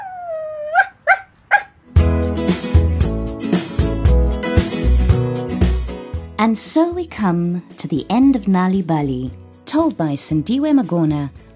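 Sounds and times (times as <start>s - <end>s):
dog whining: 0.0s - 1.8s
dog barking high-pitched: 0.7s - 1.8s
bright music: 1.9s - 11.5s
speech: 6.4s - 11.5s.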